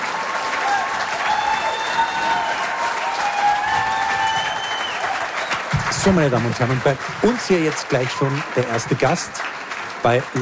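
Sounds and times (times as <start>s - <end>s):
faint whistles and cheers: 0.0s - 6.1s
large audience applauding: 0.0s - 10.4s
speech: 6.0s - 10.4s.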